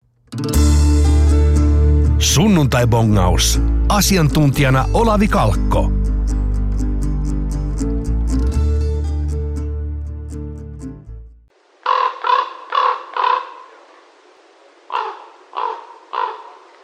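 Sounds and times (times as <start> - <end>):
music: 0.1 - 11.5
speech: 2.2 - 6.0
common raven croaking outdoors: 11.8 - 14.0, 14.9 - 16.8.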